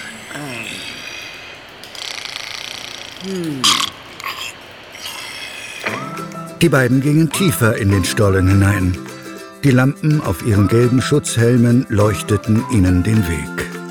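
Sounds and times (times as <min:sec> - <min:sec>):
rattling, guttural snores: 0:00.0 - 0:06.1
voice murmuring: 0:00.0 - 0:13.6
steady hiss of static: 0:00.0 - 0:13.8
speech: 0:03.2 - 0:03.9, 0:06.6 - 0:13.6.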